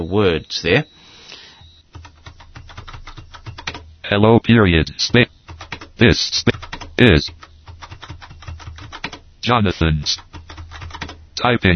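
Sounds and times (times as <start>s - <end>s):
speech: 0.0s - 1.0s, 4.1s - 5.4s, 6.0s - 7.4s, 9.5s - 10.3s, 11.4s - 11.7s
typing on a keyboard set to grade 2 mode: 1.9s - 3.8s, 5.5s - 5.9s, 6.5s - 9.2s, 10.2s - 11.2s.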